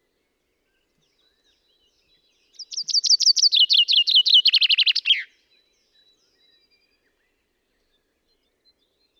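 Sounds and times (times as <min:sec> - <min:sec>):
Common chaffinch Fringilla coelebs singing: 0:02.6 - 0:05.3.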